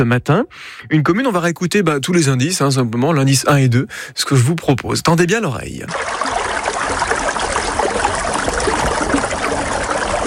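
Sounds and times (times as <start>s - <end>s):
speech: 0.0s - 7.0s
flowing stream: 5.9s - 10.2s.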